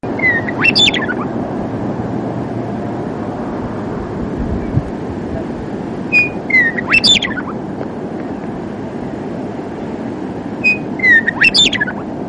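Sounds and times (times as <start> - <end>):
steady low rumble: 0.0 - 12.2
Western Meadowlark singing: 0.1 - 1.3, 6.1 - 7.6, 10.6 - 12.1.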